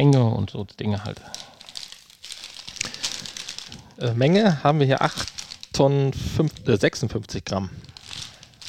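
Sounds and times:
speech: 0:00.0 - 0:01.5, 0:04.0 - 0:07.9
56-gram chip bag crinkling as it is handled: 0:01.0 - 0:06.8, 0:07.8 - 0:08.6.

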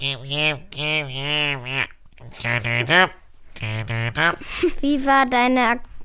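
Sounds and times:
person imitating a stuffy congested nose with nasal wordless vocalizing: 0:00.0 - 0:04.6
speech: 0:00.0 - 0:05.9.

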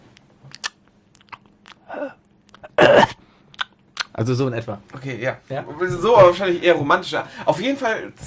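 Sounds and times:
voice imitating ASMR-style wet lip smacks and clicks: 0:00.1 - 0:04.2
speech: 0:01.9 - 0:02.2, 0:04.2 - 0:08.2.

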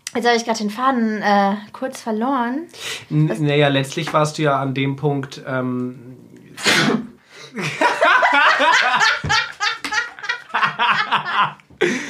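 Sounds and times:
speech: 0:00.2 - 0:07.9, 0:10.7 - 0:12.0
person sneezing: 0:06.6 - 0:07.5
people snickering and giggling: 0:07.5 - 0:12.0.

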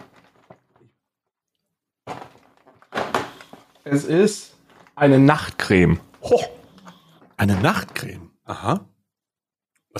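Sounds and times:
cardboard and paper rustling as a beauty advent calendar door is opened: 0:00.0 - 0:01.0, 0:02.0 - 0:08.3
speech: 0:03.8 - 0:06.6, 0:07.4 - 0:08.9.

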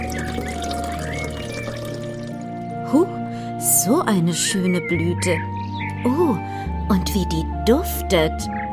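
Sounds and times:
water poured onto a plant: 0:00.0 - 0:02.7
speech: 0:02.9 - 0:03.2, 0:03.8 - 0:08.6.

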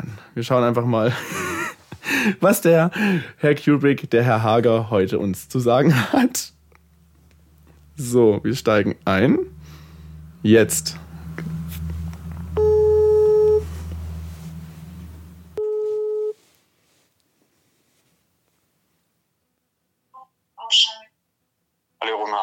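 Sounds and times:
speech: 0:00.0 - 0:01.5, 0:02.2 - 0:06.6, 0:08.0 - 0:09.5, 0:10.4 - 0:11.5
low hum: 0:04.4 - 0:15.6
ringing tone of an outgoing telephone call: 0:12.6 - 0:13.6, 0:15.6 - 0:16.4.

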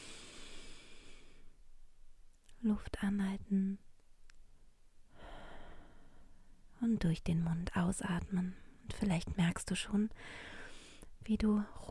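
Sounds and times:
deep inhale through the nose during a guided breathing exercise: 0:00.0 - 0:01.6, 0:10.2 - 0:11.1
speech: 0:02.6 - 0:03.9, 0:06.8 - 0:10.6, 0:11.2 - 0:11.8.

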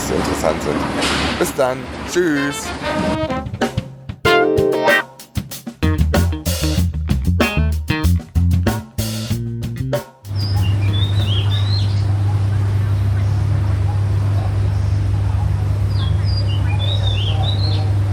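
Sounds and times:
speech: 0:00.1 - 0:03.6
rhythmic instrumental music: 0:02.2 - 0:11.6
birds chirping in high twittering bursts outdoors: 0:10.3 - 0:18.1.

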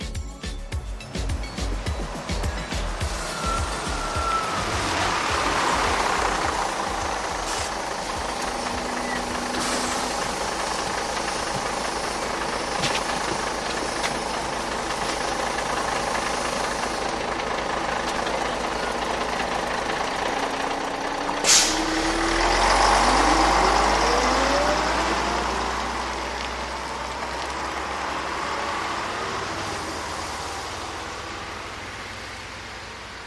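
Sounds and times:
large city bus engine idling and revving: 0:00.0 - 0:33.2
city bus air brakes hissing: 0:02.8 - 0:17.3, 0:21.3 - 0:22.2.

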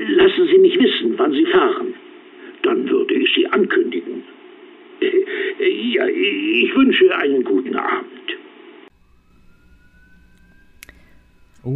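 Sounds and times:
speech: 0:00.2 - 0:02.0, 0:02.7 - 0:04.0, 0:05.6 - 0:08.2
police siren wailing: 0:08.9 - 0:11.7.

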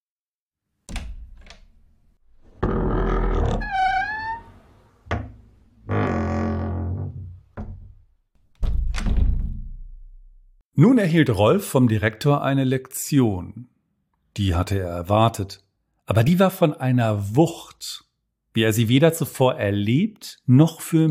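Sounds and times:
door latch clicks: 0:00.9 - 0:01.9
heavy door hinges scraping and creaking: 0:00.9 - 0:09.6
speech: 0:10.8 - 0:13.7, 0:14.4 - 0:18.0, 0:18.6 - 0:21.1.

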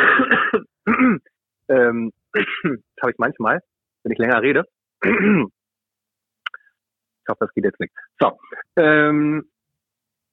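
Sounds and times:
person clearing their throat: 0:00.0 - 0:01.3, 0:05.0 - 0:05.5
person coughing: 0:00.0 - 0:01.3, 0:02.4 - 0:02.8, 0:05.0 - 0:05.5
speech: 0:01.9 - 0:02.2, 0:03.1 - 0:05.6, 0:07.3 - 0:09.5.

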